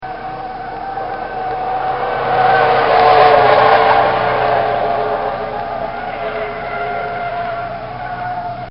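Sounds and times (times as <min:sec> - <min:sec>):
short BMW skid: 0:00.0 - 0:08.7.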